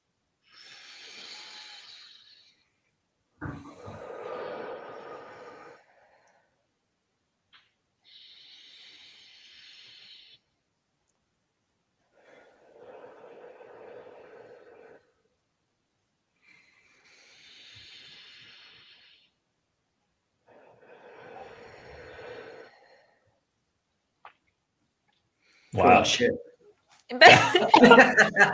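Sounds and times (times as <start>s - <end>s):
slow deep breaths with airy inhales and whooshing exhales: 0.4s - 6.8s, 7.6s - 10.6s, 12.0s - 15.4s, 16.4s - 19.5s, 20.4s - 23.6s, 25.3s - 26.2s
speech: 25.8s - 26.5s, 27.1s - 28.5s
laughter: 27.1s - 28.5s.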